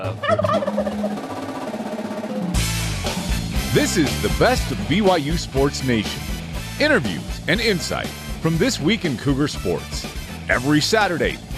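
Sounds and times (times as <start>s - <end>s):
turkey gobbling: 0.0s - 2.5s
speech: 0.1s - 0.8s, 3.8s - 11.5s.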